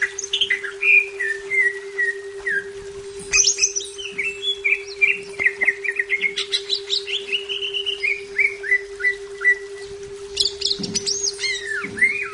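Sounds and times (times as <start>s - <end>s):
leafbird song: 0.0s - 12.3s
low electrical hum: 0.0s - 12.3s.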